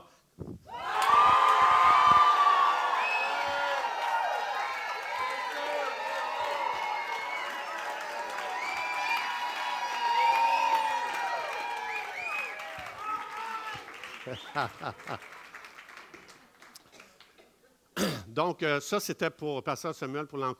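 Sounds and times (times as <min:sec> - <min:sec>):
large audience cheering and shouting: 0:00.7 - 0:13.9
large audience applauding: 0:00.8 - 0:17.4
laughter: 0:14.2 - 0:15.5
speech: 0:14.6 - 0:15.4, 0:18.4 - 0:20.5.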